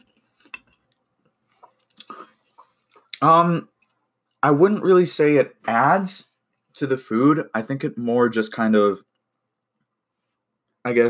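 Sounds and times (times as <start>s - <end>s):
mouth clicks and smacks chewing a meatball with cayenne pepper sauce: 0.0s - 4.4s
speech: 3.2s - 3.7s, 4.4s - 9.1s, 10.8s - 11.0s.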